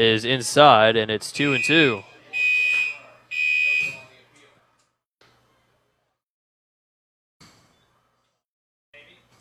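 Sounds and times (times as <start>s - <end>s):
speech: 0.0s - 2.1s
electronic alarm blaring in a ballpark press box: 1.4s - 4.0s.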